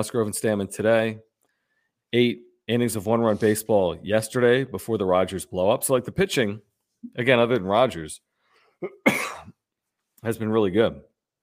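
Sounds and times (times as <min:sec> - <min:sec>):
speech: 0:00.0 - 0:01.3, 0:02.1 - 0:09.5, 0:10.2 - 0:11.1
harsh coughs: 0:08.8 - 0:09.6.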